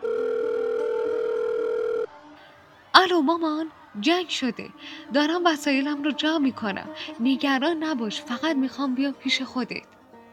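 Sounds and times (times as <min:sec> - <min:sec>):
telephone dial tone while a number is being called: 0:00.0 - 0:02.1
speech: 0:03.0 - 0:10.0.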